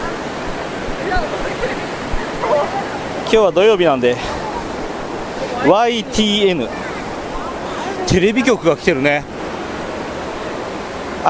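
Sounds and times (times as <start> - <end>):
rushing water from a small artificial waterfall in a city stream: 0.0 - 11.2
speech: 2.6 - 4.4, 5.6 - 6.8, 8.1 - 9.3.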